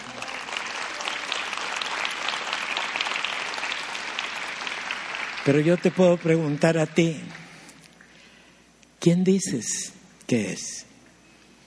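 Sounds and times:
large group applauding in a room: 0.0 - 7.2
speech: 5.5 - 7.4, 9.0 - 10.9.

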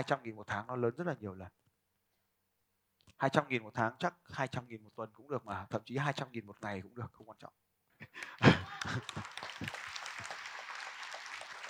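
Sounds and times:
speech: 0.0 - 1.6, 3.2 - 9.8
laughter: 8.0 - 10.3
audience applause: 8.2 - 11.6.

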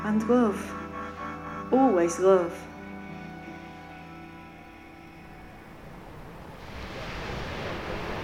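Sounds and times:
sustained musical tone: 0.0 - 6.6
speech: 0.1 - 0.8, 1.7 - 2.7
sea waves breaking on a beach below a cliff: 5.7 - 8.2.

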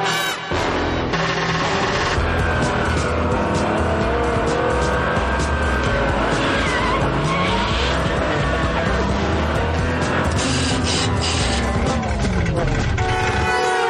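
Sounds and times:
Ferrari sports car engine roaring with a sticky clutch: 0.5 - 13.6.

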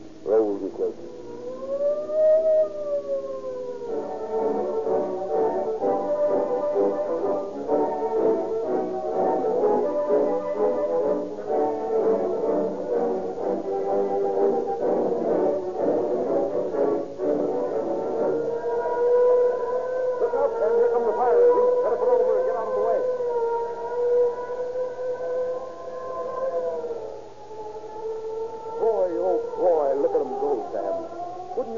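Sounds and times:
voices: 0.2 - 1.3, 20.2 - 23.2, 28.8 - 31.7
fire engine siren wailing: 0.3 - 31.7
speech: 0.6 - 1.2.

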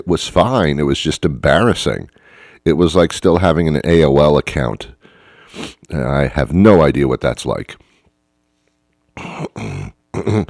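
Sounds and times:
speech: 0.0 - 7.9, 9.2 - 10.4
man clearing throat: 9.2 - 10.4.

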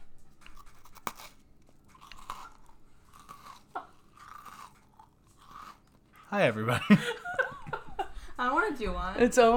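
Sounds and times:
Biscoff cookies crunching and chewing: 0.0 - 6.8
speech: 6.4 - 7.2, 8.7 - 9.5
laughter: 6.5 - 8.4.

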